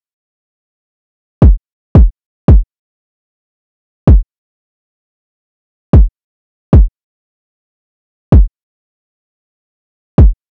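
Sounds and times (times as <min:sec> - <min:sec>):
kick drum loop: 0:01.4 - 0:02.7, 0:10.2 - 0:10.4.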